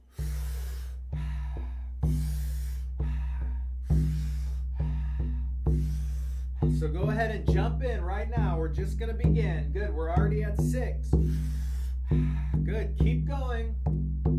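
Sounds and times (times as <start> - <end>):
rhythmic powerful inhales and soft exhales: 0.0 - 6.9, 11.1 - 12.7
speech: 6.8 - 14.0.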